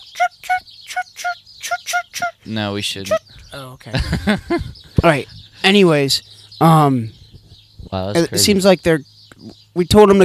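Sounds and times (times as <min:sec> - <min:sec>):
birds chirping outside: 0:00.0 - 0:10.2
speech: 0:02.5 - 0:07.2, 0:07.9 - 0:10.2
laughter: 0:03.8 - 0:05.1.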